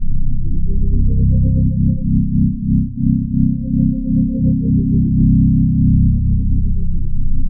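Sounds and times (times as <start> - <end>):
electronic synthetic harmonic bass loop: 0.0 - 7.4.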